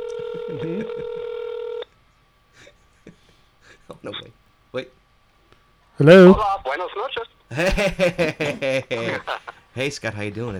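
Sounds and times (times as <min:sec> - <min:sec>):
electronic telephone tone of a call dialing out: 0:00.0 - 0:01.9
laughter: 0:00.4 - 0:01.1, 0:07.5 - 0:10.0
speech: 0:00.5 - 0:01.3, 0:04.0 - 0:05.0, 0:06.0 - 0:10.5.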